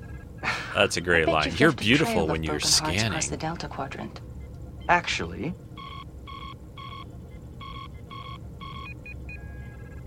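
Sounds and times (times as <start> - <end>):
constant low engine rumble: 0.0 - 10.0
speech: 0.8 - 4.3, 4.9 - 5.7
ship's sensor alarm beeping from stray radiation of a nebula: 5.8 - 10.0.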